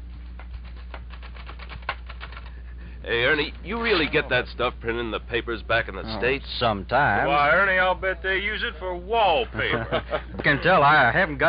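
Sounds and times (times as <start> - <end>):
steady low hum: 0.0 - 11.4
typewriter keys clacking as a war correspondent types: 0.2 - 2.6
speech: 3.0 - 11.4
laughter: 9.4 - 11.0.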